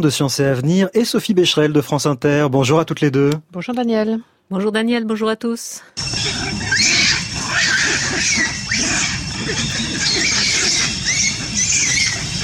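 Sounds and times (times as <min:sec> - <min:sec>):
speech: 0:00.0 - 0:06.9
macaque monkeys shrieking: 0:06.0 - 0:12.4.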